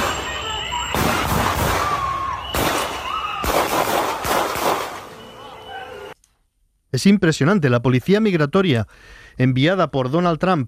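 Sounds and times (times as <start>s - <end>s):
gunshots: 0.0s - 5.2s
street commotion: 0.0s - 6.2s
speech: 7.0s - 10.6s.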